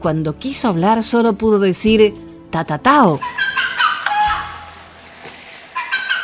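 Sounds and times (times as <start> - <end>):
speech: 0.0 - 3.5
bird calling in short high shrill bursts: 3.2 - 6.2.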